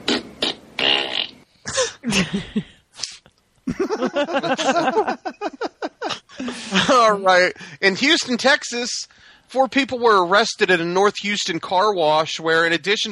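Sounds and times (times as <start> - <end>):
farts: 0.1 - 1.5
laughter: 1.7 - 2.8, 3.7 - 7.8
speech: 2.1 - 2.8, 7.0 - 13.1.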